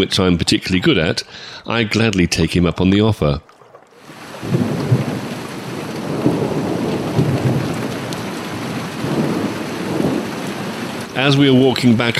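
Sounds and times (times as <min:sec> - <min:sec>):
speech: 0:00.0 - 0:03.5, 0:11.2 - 0:12.1
steady heavy rain hissing: 0:04.0 - 0:12.1
deep rolls of thunder rumbling: 0:04.1 - 0:12.1.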